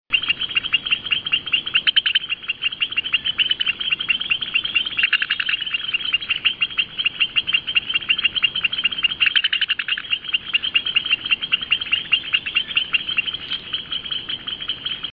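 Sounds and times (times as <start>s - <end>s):
Leptodactylus albilabris chorus calling in Puerto Rico: 0.1s - 15.1s.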